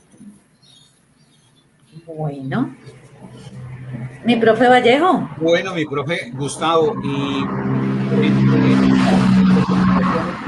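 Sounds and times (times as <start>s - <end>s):
speech: 2.1s - 10.4s
car roaring past outside: 2.7s - 10.4s.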